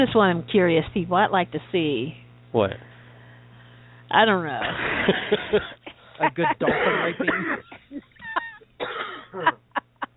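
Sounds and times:
speech: 0.0 - 2.9, 4.1 - 8.1, 8.8 - 9.6
low steady hum: 0.0 - 10.1
laughter: 4.6 - 10.1
person coughing: 6.6 - 7.8, 8.8 - 9.6.

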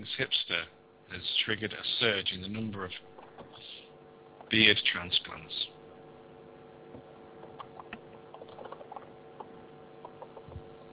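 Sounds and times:
speech: 0.2 - 0.8, 1.5 - 3.2, 4.5 - 5.6
typing on a keyboard: 7.6 - 10.5.

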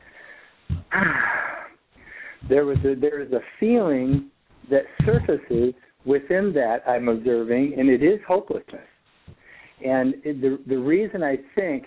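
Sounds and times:
heavy breathing of a person out of breath after running upstairs: 0.0 - 2.7, 9.3 - 9.8
speech: 1.0 - 1.2, 2.5 - 8.9, 9.8 - 11.8.

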